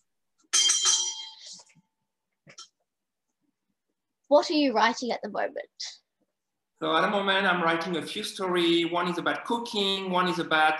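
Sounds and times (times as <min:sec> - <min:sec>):
bell ringing: 0:00.5 - 0:01.6
speech: 0:04.3 - 0:06.0, 0:06.8 - 0:10.7.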